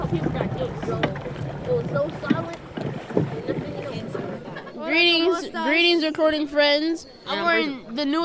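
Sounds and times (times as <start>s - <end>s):
rushing river water: 0.0s - 4.6s
wind buffeting the microphone: 0.0s - 4.6s
raft paddles dipping and splashing: 0.0s - 5.2s
people talking and calling out: 0.0s - 8.2s
speech: 0.1s - 2.6s, 4.9s - 8.2s.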